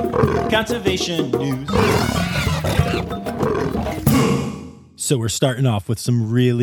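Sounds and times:
loud rumbling big-cat roar: 0.1s - 0.6s, 1.6s - 4.8s
speech: 0.5s - 3.3s, 5.1s - 6.6s.

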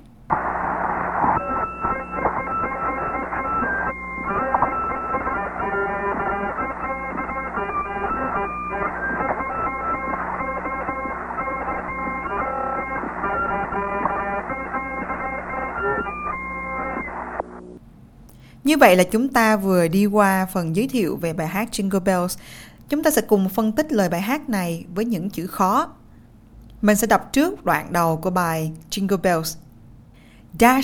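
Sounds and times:
crackly hissing radio transmission from space: 0.0s - 30.8s
harmonica tune played by an astronaut in space: 1.4s - 17.1s
speech: 18.7s - 26.0s, 26.8s - 29.6s, 30.5s - 30.8s.

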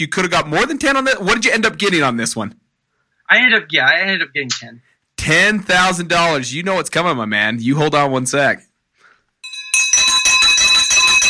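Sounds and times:
speech: 0.0s - 2.6s, 3.3s - 8.7s
victory bell ringing: 9.4s - 11.2s.

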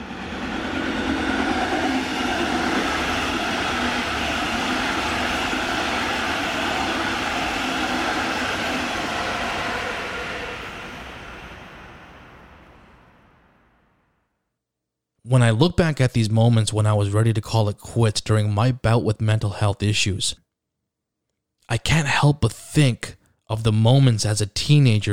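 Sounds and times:
train passing on tracks: 0.0s - 13.8s
speech: 15.3s - 20.4s, 21.7s - 25.1s.

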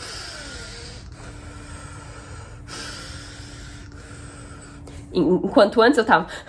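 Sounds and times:
slow deep breathing: 0.0s - 5.2s
speech: 5.1s - 6.4s.

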